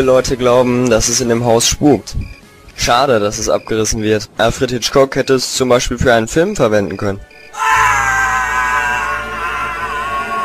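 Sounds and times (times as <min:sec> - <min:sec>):
speech: 0:00.0 - 0:07.9
person screaming in a house said to be haunted: 0:07.5 - 0:10.4.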